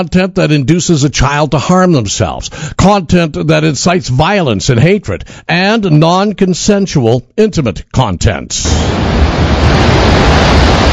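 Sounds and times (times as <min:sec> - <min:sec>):
speech: 0:00.0 - 0:10.2
wall of water roaring out of a dam spillway: 0:08.7 - 0:10.9.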